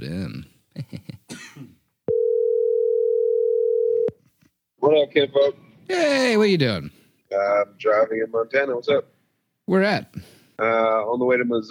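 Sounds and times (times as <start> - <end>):
person coughing: 1.3 - 1.8
steady electronic phone line tone: 2.1 - 4.1
speech: 5.2 - 11.6.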